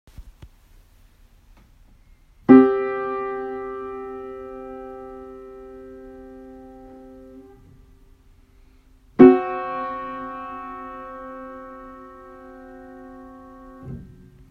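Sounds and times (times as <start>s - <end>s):
Perfect 5 interval: 2.5s - 14.4s.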